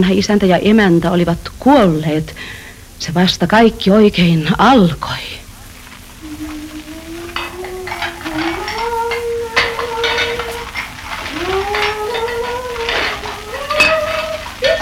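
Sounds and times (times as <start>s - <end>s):
speech: 0.0s - 5.4s
drawn-out wavering whine: 5.8s - 14.8s
pots and cutlery clinking and clattering while dishes are washed: 5.8s - 14.8s.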